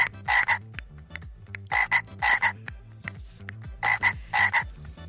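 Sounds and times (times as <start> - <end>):
louder rising whistle-like frog calls: 0.0 - 0.6, 1.7 - 2.6, 3.8 - 4.6
small frogs croaking at night at a house window in the rainy season: 0.0 - 0.7, 1.6 - 2.6, 3.8 - 4.7.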